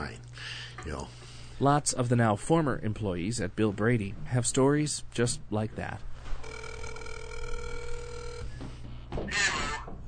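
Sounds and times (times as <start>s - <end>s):
speech: 0.8s - 6.1s
telephone ringing through a speakerphone on a call: 6.4s - 8.6s.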